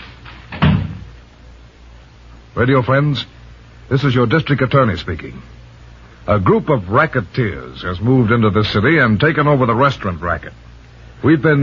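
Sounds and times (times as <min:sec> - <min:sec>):
door swinging shut with a solid thud: 0:00.0 - 0:01.2
speech: 0:02.6 - 0:05.6, 0:06.3 - 0:11.6.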